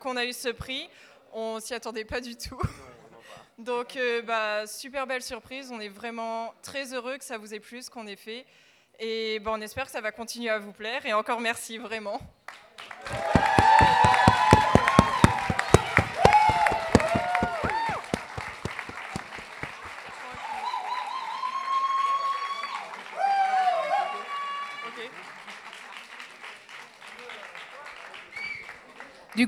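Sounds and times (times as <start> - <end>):
speech: 0.0 - 3.0, 3.6 - 12.6
audience applauding: 12.9 - 29.2.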